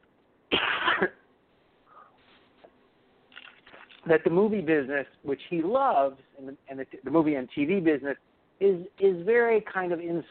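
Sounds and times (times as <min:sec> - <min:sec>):
person giving a short rough cough: 0:00.5 - 0:01.2
speech: 0:04.1 - 0:10.3.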